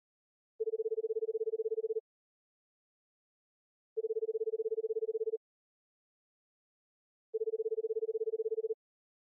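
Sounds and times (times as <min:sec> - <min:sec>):
telephone ringback tone of buzzing tones: 0:00.6 - 0:02.0, 0:04.0 - 0:05.4, 0:07.4 - 0:08.8.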